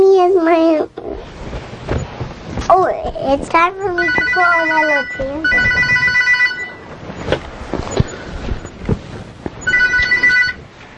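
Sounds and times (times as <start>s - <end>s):
soft knocks and handling noises: 1.2s - 10.9s
speech: 3.0s - 6.0s
telephone bell ringing in a home: 4.0s - 6.9s, 9.7s - 10.6s.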